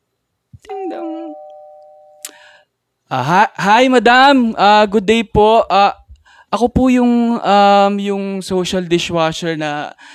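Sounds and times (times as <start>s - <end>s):
doorbell two-note ding-dong chime: 0.7s - 2.3s
speech: 3.1s - 10.1s.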